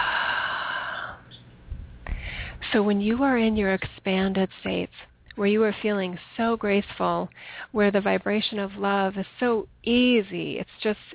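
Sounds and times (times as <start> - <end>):
deep breath: 0.0 - 1.3, 2.0 - 2.6, 7.4 - 7.8
speech: 2.7 - 11.1.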